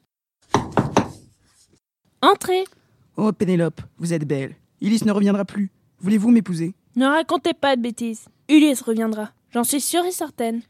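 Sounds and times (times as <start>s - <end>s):
knocking on a wooden door: 0.5s - 1.2s
speech: 2.2s - 10.6s.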